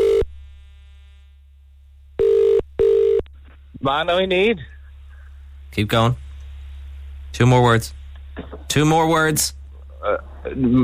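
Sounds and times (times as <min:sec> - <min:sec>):
telephone ringing with an electronic trill: 0:02.2 - 0:03.2
speech: 0:03.8 - 0:04.7, 0:05.7 - 0:06.2, 0:07.3 - 0:10.8.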